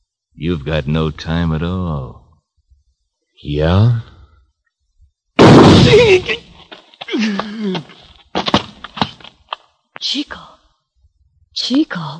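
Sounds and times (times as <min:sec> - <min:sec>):
speech: 0:00.4 - 0:02.2, 0:03.4 - 0:04.0, 0:05.8 - 0:06.4, 0:07.2 - 0:08.5, 0:10.0 - 0:10.6, 0:11.6 - 0:12.1
gunshot in an old-time western radio drama: 0:05.4 - 0:06.3.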